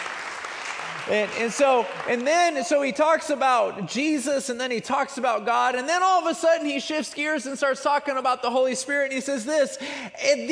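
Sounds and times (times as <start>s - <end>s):
audience applause with many hands clapping: 0.0s - 3.0s
speech: 1.1s - 10.5s.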